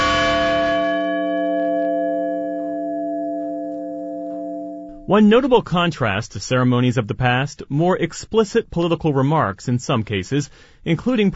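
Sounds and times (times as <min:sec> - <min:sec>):
single deep memorial bell tolling: 0:00.0 - 0:05.5
speech: 0:05.1 - 0:11.3.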